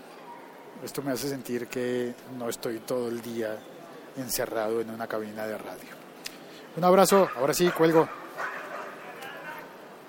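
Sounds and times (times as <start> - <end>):
steady noise: 0.0 - 10.0
speech: 0.8 - 6.0, 6.8 - 8.2
dogs barking: 7.1 - 9.7.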